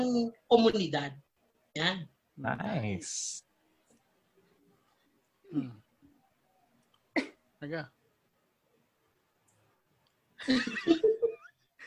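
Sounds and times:
speech: 0.0s - 1.2s, 1.8s - 3.4s, 5.5s - 5.8s, 7.2s - 8.0s, 10.4s - 11.3s
person coughing: 7.2s - 7.4s.

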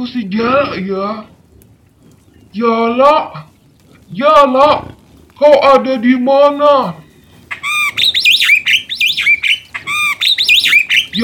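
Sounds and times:
speech: 0.0s - 1.3s, 2.5s - 3.5s, 4.1s - 7.0s
black starling calling: 6.3s - 11.2s.

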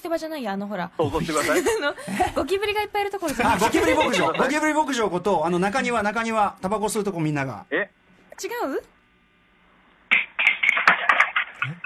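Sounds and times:
speech: 0.0s - 9.0s, 11.6s - 11.8s
laughter: 1.0s - 2.6s, 3.2s - 4.9s
chair knocked by stumbling person in an outdoor courtyard smoking area: 10.1s - 11.8s.

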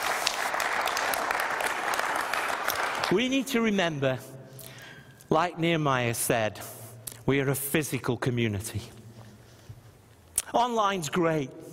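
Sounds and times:
crowd applauding: 0.0s - 3.2s
speech: 3.1s - 4.4s, 5.3s - 9.0s, 10.5s - 11.6s.

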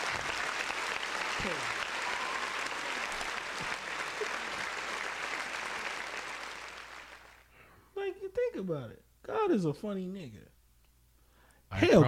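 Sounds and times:
dense round of applause from a crowd: 0.0s - 7.5s
speech: 1.4s - 1.8s, 8.7s - 10.5s, 11.7s - 12.0s.

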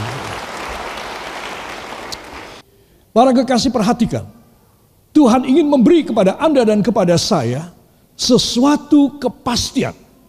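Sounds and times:
audience applause: 0.0s - 2.6s
speech: 3.2s - 4.4s, 5.2s - 10.0s.

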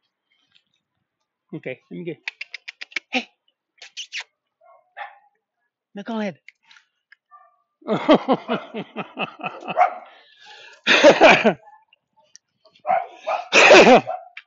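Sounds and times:
speech: 1.5s - 2.4s, 3.1s - 3.3s, 6.0s - 6.5s, 7.8s - 10.0s, 10.9s - 11.6s, 13.8s - 14.1s
small dog barking while chasing a cat: 4.6s - 5.4s, 7.3s - 7.6s, 9.5s - 10.1s, 12.8s - 14.4s
laughter: 7.8s - 11.6s.

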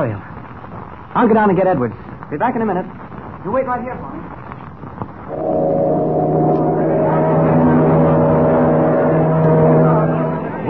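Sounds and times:
speech: 0.0s - 0.3s, 1.2s - 4.3s
boat engine starting and droning as the vessel departs: 5.3s - 10.6s.

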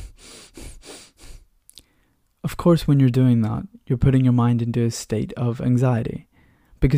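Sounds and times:
person demonstrating rapid shallow breathing: 0.0s - 2.2s
speech: 2.5s - 6.9s.

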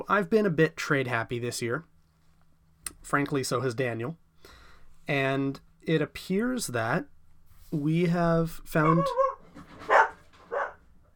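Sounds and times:
speech: 0.0s - 1.9s, 3.0s - 9.2s
dog barking: 8.8s - 10.8s.

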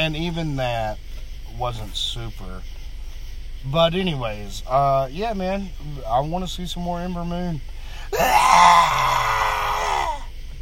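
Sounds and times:
speech: 0.0s - 2.8s, 3.6s - 9.4s
female wrestler's loud high-pitched screech: 8.1s - 10.3s.

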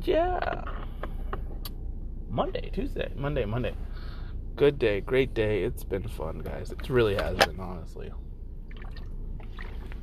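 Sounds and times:
speech: 0.0s - 0.8s, 2.3s - 3.9s, 4.6s - 8.2s
low steady rumble: 0.0s - 10.0s
bubbling and dripping water: 8.6s - 10.0s
water sloshing and gurgling inside a drink container: 8.6s - 10.0s.

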